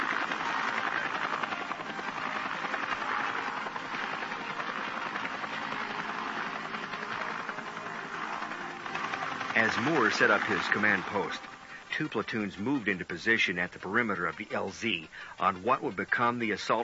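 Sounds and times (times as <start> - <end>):
Huey helicopters landing troops at a landing zone: 0.0 - 11.6
speech: 9.6 - 16.8.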